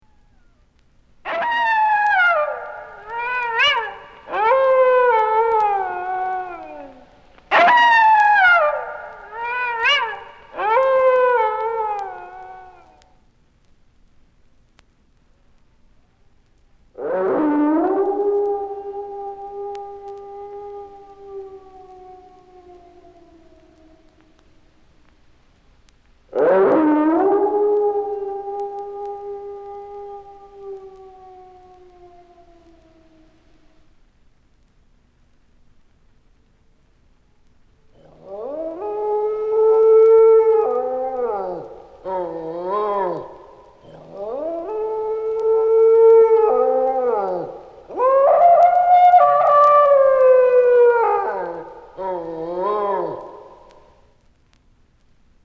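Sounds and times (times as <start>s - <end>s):
dogs howling in a haunted house: 1.3s - 13.1s, 17.0s - 24.6s, 26.3s - 33.6s, 37.8s - 54.1s.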